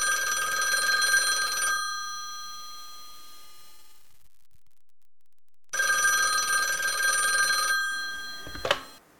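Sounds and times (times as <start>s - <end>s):
telephone bell ringing: 0.0s - 4.0s, 5.8s - 9.0s
telephone receiver click: 8.4s - 9.0s.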